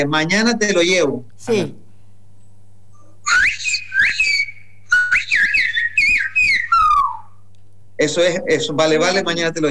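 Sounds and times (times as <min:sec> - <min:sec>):
speech: 0:00.0 - 0:01.8, 0:08.0 - 0:09.6
faint steady hum: 0:00.0 - 0:09.6
person whistling a Spanish phrase in silbo whistled language: 0:03.3 - 0:07.4.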